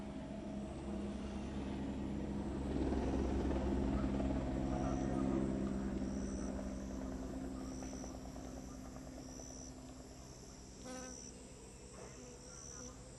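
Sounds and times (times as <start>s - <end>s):
gendarmerie helicopters rotor drone at a gold-mining well site: 0.0s - 13.1s
faint insect chirps: 4.8s - 13.1s.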